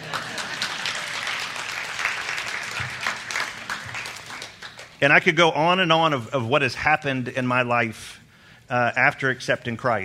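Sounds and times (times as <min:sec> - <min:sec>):
crowd applauding: 0:00.0 - 0:05.2
speech: 0:05.0 - 0:10.0.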